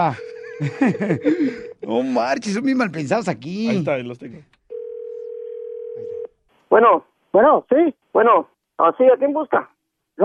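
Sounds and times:
laughter: 0:00.0 - 0:01.7
telephone ringing with a steady electronic tone: 0:00.0 - 0:01.8, 0:04.7 - 0:06.3
speech: 0:00.0 - 0:04.6, 0:06.7 - 0:10.2.

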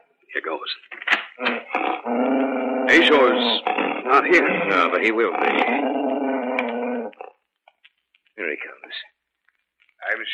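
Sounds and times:
speech: 0:00.4 - 0:06.2, 0:08.5 - 0:09.2, 0:10.0 - 0:10.3
dog growling at a door: 0:01.4 - 0:07.4.

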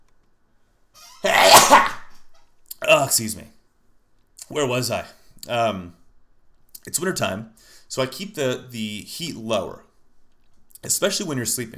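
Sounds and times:
breathy intake before a sneeze: 0:01.2 - 0:02.0
person sneezing: 0:01.2 - 0:02.2
speech: 0:02.9 - 0:03.6, 0:04.5 - 0:06.0, 0:06.8 - 0:09.9, 0:10.8 - 0:11.7.

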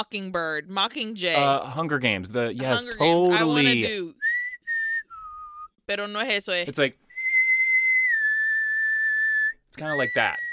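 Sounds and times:
speech: 0:00.0 - 0:04.3, 0:05.9 - 0:07.0, 0:09.8 - 0:10.4
person whistling a short two-note phrase: 0:04.1 - 0:05.8, 0:07.1 - 0:10.5.

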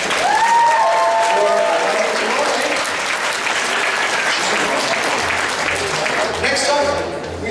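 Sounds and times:
whoops and cheers: 0:00.0 - 0:02.4
large audience clapping: 0:00.0 - 0:07.4.

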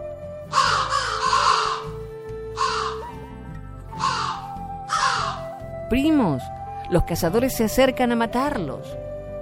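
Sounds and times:
soft sustained musical background: 0:00.0 - 0:09.4
crows cawing harshly: 0:00.5 - 0:03.3, 0:03.9 - 0:05.6
speech: 0:05.9 - 0:09.0.

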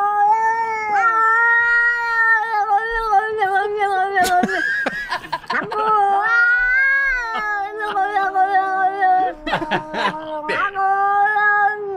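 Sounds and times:
two cats caterwauling: 0:00.0 - 0:03.0, 0:05.5 - 0:11.9
laughter: 0:04.2 - 0:06.3, 0:07.1 - 0:08.4, 0:09.3 - 0:10.7.

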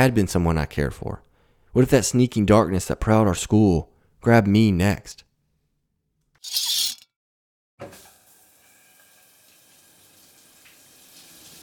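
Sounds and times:
speech: 0:00.0 - 0:05.3, 0:06.4 - 0:06.7
shower spraying water: 0:07.9 - 0:11.6.

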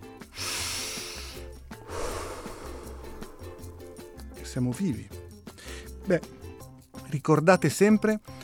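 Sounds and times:
soft low musical bed: 0:00.0 - 0:08.4
long deep breath drawn in through the nose and released: 0:00.3 - 0:04.4
speech: 0:04.5 - 0:05.2, 0:06.1 - 0:06.4, 0:07.1 - 0:08.3.

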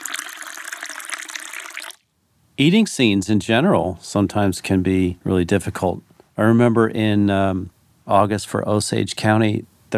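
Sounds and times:
liquid splashing and gurgling as it pours into a cup: 0:00.0 - 0:02.0
speech: 0:02.6 - 0:09.9.

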